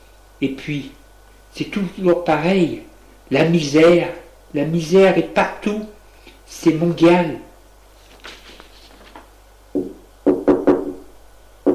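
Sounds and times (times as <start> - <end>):
speech: 0.4 - 7.5
solid knocks on a door: 9.8 - 11.0.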